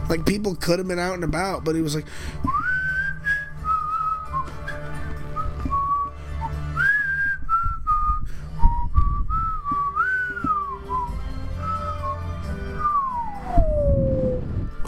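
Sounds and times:
speech: 0:00.1 - 0:02.7
person whistling a wandering melody imitating someone's whistling: 0:02.4 - 0:14.5.

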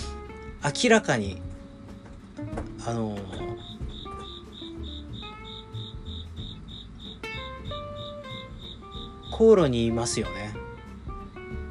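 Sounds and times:
speech: 0:00.6 - 0:01.5, 0:02.4 - 0:03.6, 0:09.4 - 0:10.6
crickets chirping under the floor of a coffee roastery on a humid August evening: 0:03.3 - 0:11.6.

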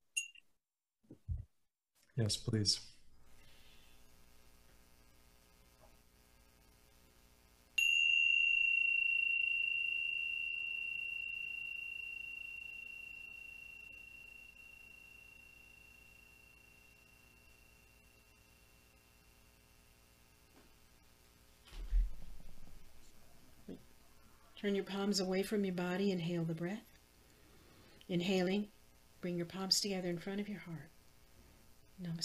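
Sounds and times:
speech: 0:02.2 - 0:02.9, 0:24.6 - 0:26.9, 0:28.1 - 0:31.0, 0:32.0 - 0:32.2
bell ringing: 0:07.8 - 0:19.0
soft rustle: 0:21.6 - 0:23.4.

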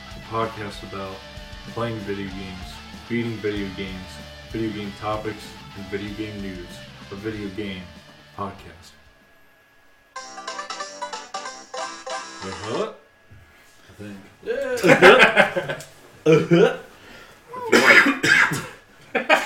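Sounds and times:
speech: 0:00.3 - 0:09.0, 0:12.4 - 0:13.0, 0:14.0 - 0:16.9
melodic electronic jingle: 0:10.2 - 0:12.9
laughter: 0:14.5 - 0:16.8, 0:19.1 - 0:19.4
loud coughs and throat-clearing: 0:17.6 - 0:18.8.

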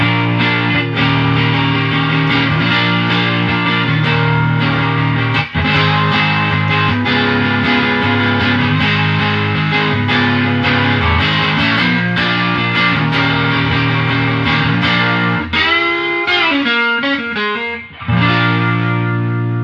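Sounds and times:
electric guitar chords through Vox Pathfinder R amp with reverb: 0:00.0 - 0:19.6.

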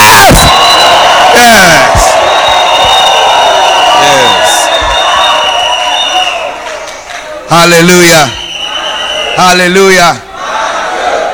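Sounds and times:
scattered whoops and cries: 0:00.0 - 0:06.6
large crowd shouting and cheering: 0:00.0 - 0:11.3
speech: 0:07.5 - 0:08.4, 0:09.4 - 0:10.2.

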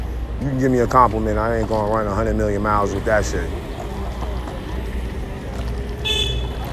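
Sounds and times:
steady low rumble of engine and traffic noise: 0:00.0 - 0:06.7
speech: 0:00.4 - 0:03.7
brief high-pitched scooter horn honk: 0:06.0 - 0:06.7.

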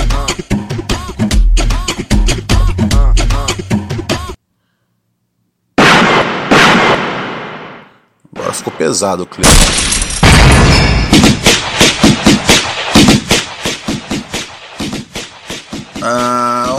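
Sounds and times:
music with singing: 0:00.0 - 0:04.4, 0:15.7 - 0:16.7
gunshot blast: 0:05.8 - 0:08.5, 0:09.4 - 0:15.6
speech: 0:08.8 - 0:10.2, 0:16.1 - 0:16.7.

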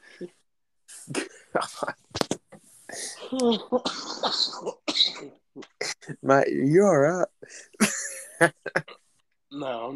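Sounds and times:
speech: 0:00.2 - 0:00.4, 0:01.1 - 0:02.0, 0:03.4 - 0:04.7, 0:06.3 - 0:07.3
person coughing with a lingering cough: 0:03.5 - 0:06.1.

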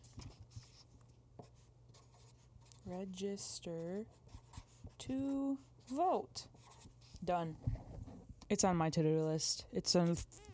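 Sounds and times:
Sharpie marker writing on paper: 0:00.0 - 0:08.0
low steady hum: 0:00.0 - 0:10.5
speech: 0:02.8 - 0:04.3, 0:05.0 - 0:06.6, 0:07.2 - 0:07.7, 0:08.5 - 0:10.4.

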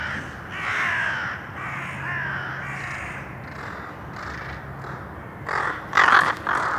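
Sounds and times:
crows cawing in a city: 0:00.0 - 0:06.7.

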